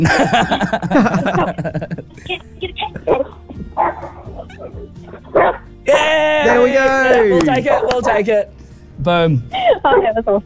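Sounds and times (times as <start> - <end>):
speech: 0.0 - 2.6, 6.6 - 10.4
laughter: 0.0 - 5.2
dog barking and yipping over a phone call: 3.0 - 6.6, 7.3 - 8.2.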